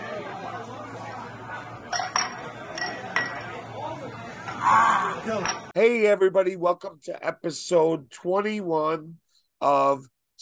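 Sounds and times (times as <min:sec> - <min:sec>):
murmur of voices: 0:00.0 - 0:05.7
glasses with Irish car bomb drinks clinking in a toast: 0:01.9 - 0:03.6, 0:05.4 - 0:05.7
speech: 0:04.7 - 0:10.4.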